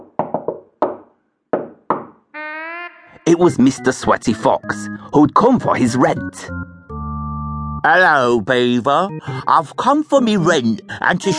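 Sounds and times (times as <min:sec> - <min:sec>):
knocking on a door: 0:00.0 - 0:02.2
speech: 0:03.2 - 0:06.7, 0:07.8 - 0:11.3.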